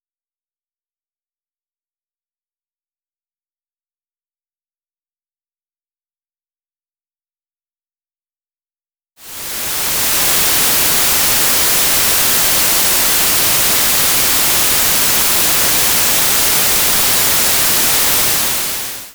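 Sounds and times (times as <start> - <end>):
white noise: 9.2 - 19.1.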